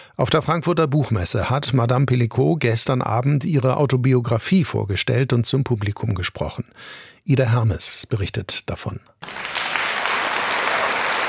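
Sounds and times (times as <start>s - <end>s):
speech: 0.2s - 9.6s
audience applause on a literature stage at a book fair in Frankfurt: 9.2s - 11.2s.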